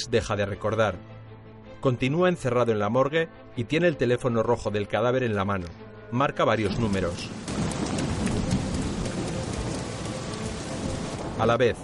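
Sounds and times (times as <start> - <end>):
speech: 0.0 - 1.2, 1.8 - 7.6, 11.4 - 11.8
dense steady thunderstorm rain hissing: 6.7 - 11.4
low thunder rumble: 6.7 - 11.8.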